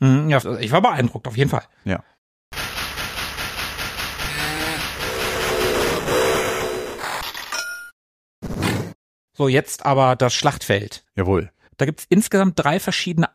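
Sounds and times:
speech: 0.3 - 2.1, 9.4 - 13.3
steam locomotive chuffing: 2.6 - 7.0
short steam locomotive whistle: 5.0 - 7.0.

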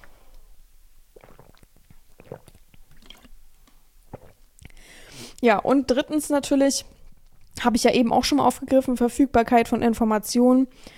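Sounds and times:
person gulping a drink: 1.1 - 4.8
speech: 5.4 - 7.0, 7.6 - 10.9.

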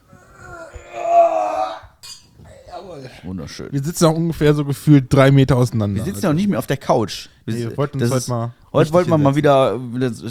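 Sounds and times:
wine glasses clinking in a toast: 2.0 - 2.4
speech: 3.0 - 10.2.

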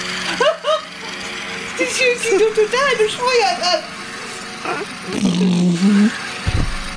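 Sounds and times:
electric lawnmower motor droning: 0.0 - 6.9
laughter: 0.2 - 1.4
speech: 1.9 - 4.0, 4.6 - 5.9
low rumbling thump: 6.4 - 6.9.

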